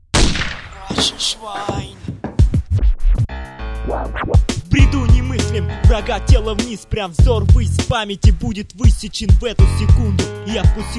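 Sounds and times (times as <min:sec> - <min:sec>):
loud gunshot: 0:00.1 - 0:01.3
speech: 0:01.0 - 0:02.0, 0:03.9 - 0:10.9.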